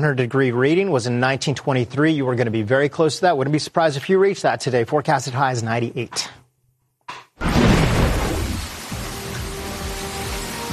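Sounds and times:
speech: 0.0s - 6.4s
loud crack of thunder: 7.4s - 8.9s
rumbling thunderstorm noise: 7.4s - 8.9s
heavy monsoon rain: 7.4s - 10.7s.

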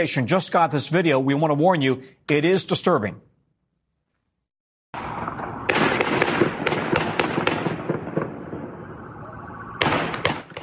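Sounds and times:
speech: 0.0s - 3.3s
rifle gunfire pops: 5.7s - 8.4s, 9.8s - 10.6s
steady droning alarm-like tone: 8.6s - 10.4s.

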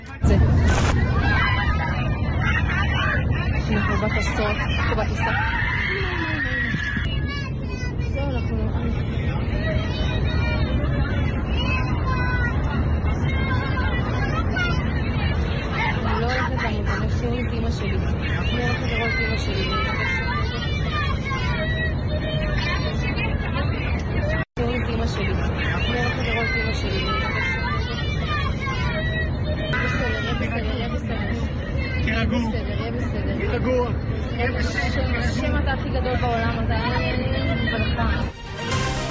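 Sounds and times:
constant low aircraft engine rumble: 0.0s - 39.0s
many passengers murmuring inside an aircraft cabin in flight: 0.0s - 39.0s.

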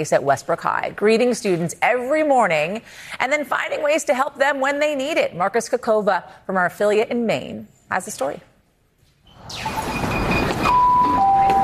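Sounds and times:
speech: 0.0s - 8.5s
high school bell ringing to start the day: 10.1s - 11.6s.

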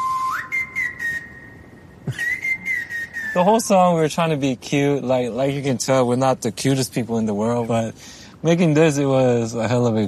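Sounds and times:
person whistling a short melody of gliding notes: 0.0s - 3.5s
speech: 3.4s - 10.0s.

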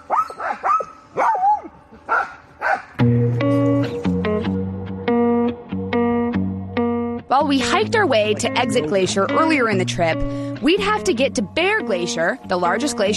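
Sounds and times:
sled dogs barking and yelping excitedly: 0.0s - 3.0s
bright steady music with plucked notes: 3.0s - 13.1s
speech: 7.5s - 13.1s.

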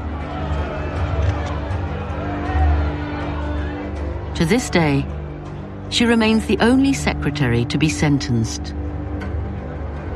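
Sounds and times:
large crowd booing a prison sentence at a trial: 0.0s - 4.3s
speech: 4.4s - 5.2s, 5.9s - 8.8s.

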